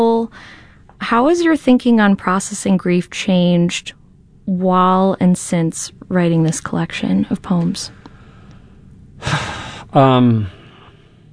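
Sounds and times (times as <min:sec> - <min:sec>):
speech: 0:00.0 - 0:08.0, 0:09.2 - 0:10.6
person taking a deep breath: 0:08.0 - 0:11.3.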